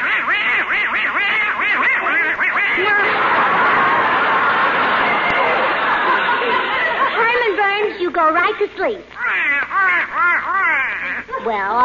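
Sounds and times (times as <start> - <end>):
little duck quacking rapidly and loudly: 0.0 - 3.1, 9.2 - 11.3
dense wash of crowd noise: 0.0 - 11.8
laughter: 1.8 - 8.2, 9.4 - 11.8
speech: 8.5 - 11.8.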